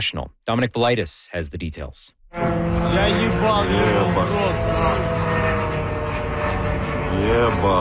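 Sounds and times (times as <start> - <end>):
speech: 0.0 - 5.6, 7.2 - 7.7
drone flying overhead over Khimki during a drone attack: 2.2 - 7.7.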